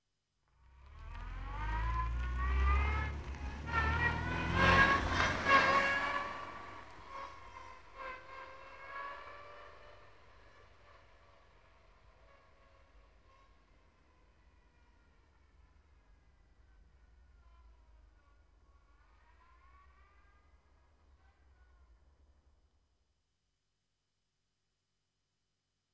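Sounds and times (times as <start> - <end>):
car reversing: 0.8 - 8.0.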